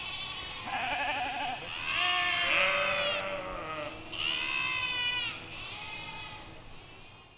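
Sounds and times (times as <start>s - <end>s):
flock of sheep bleating in a park: 0.1s - 6.5s.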